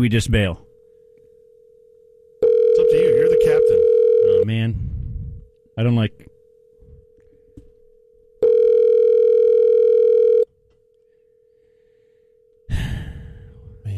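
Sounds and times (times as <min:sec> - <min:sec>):
speech: 0:00.0 - 0:00.7, 0:04.4 - 0:04.9, 0:05.8 - 0:06.3
loud harmonic ringing tone: 0:00.9 - 0:04.6, 0:08.0 - 0:10.5
steady phone dial tone: 0:02.4 - 0:04.5, 0:08.4 - 0:10.6
breathy sigh: 0:11.2 - 0:13.9.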